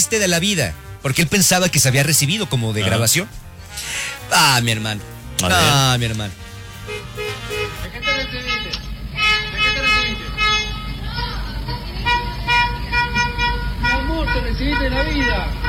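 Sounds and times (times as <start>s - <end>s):
speech: 0.0s - 6.5s, 14.3s - 15.6s
several car horns honking in celebration: 0.0s - 15.6s
traffic noise: 0.0s - 15.6s
indistinct voices: 3.8s - 15.6s.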